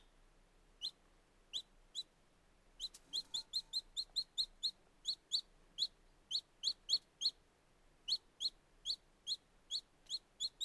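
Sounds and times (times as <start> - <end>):
faint low hiss: 0.0 - 10.6
very young chicks cheeping: 2.8 - 7.4, 8.1 - 10.6.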